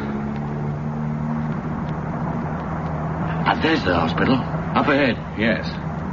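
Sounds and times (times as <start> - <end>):
lorry engine droning on the Fulham Road as the lorry turns off: 0.0 - 6.1
speech: 3.6 - 5.9.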